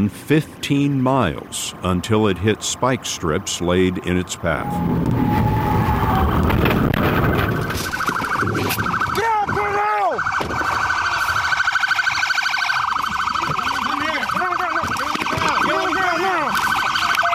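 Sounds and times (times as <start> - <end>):
speech: 0.0 - 9.2
loud steady road and engine noise: 0.0 - 17.3
police siren wailing during a traffic stop chase near Key West Florida: 4.5 - 17.3.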